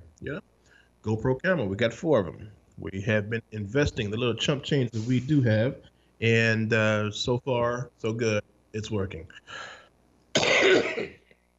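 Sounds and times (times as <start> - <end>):
speech: 0.2 - 9.8, 10.6 - 11.2
harsh rasping phlegmy cough: 10.4 - 11.2.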